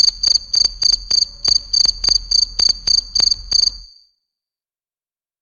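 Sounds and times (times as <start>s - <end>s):
cricket chirping: 0.0s - 4.2s.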